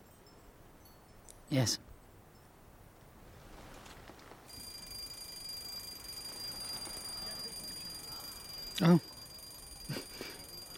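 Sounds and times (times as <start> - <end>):
speech: 1.5 - 1.9, 8.8 - 9.1
shrill high-pitched electronic alarm ringing: 4.5 - 10.7.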